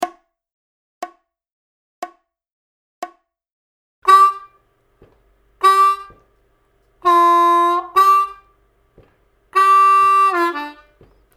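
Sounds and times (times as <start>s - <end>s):
intermediate harmonica licks in G at 60 BPM: 4.1s - 11.3s.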